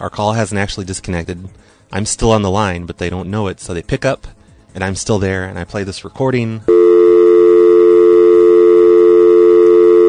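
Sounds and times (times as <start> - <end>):
speech: 0.0 - 6.8
landline telephone dial tone: 6.7 - 10.0.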